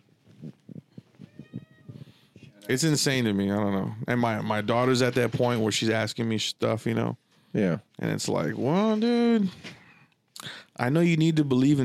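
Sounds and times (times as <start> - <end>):
cat meowing: 1.2 - 2.2
speech: 2.6 - 9.8, 10.8 - 11.8.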